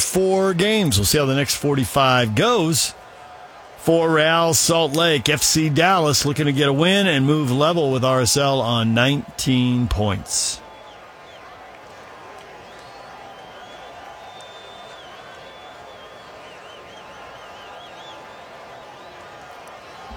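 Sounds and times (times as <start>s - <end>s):
large stadium crowd roaring at a soccer match: 0.0s - 20.1s
speech: 0.2s - 3.0s, 3.8s - 10.6s
shrill whistles: 12.5s - 20.1s.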